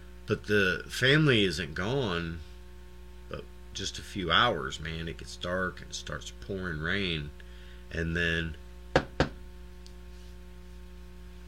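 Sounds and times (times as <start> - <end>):
speech: 0.3 - 2.5, 3.3 - 8.6
sharp knocks at a door: 8.9 - 9.4.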